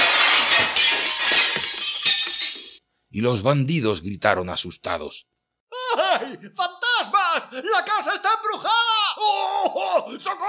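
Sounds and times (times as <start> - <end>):
window glass shattering into pieces: 0.0 - 2.8
speech: 3.2 - 5.3, 6.1 - 10.4.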